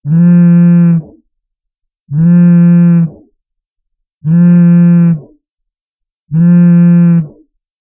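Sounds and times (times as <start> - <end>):
phone vibrating: 0.0 - 1.2, 2.1 - 3.3, 4.2 - 5.4, 6.3 - 7.4.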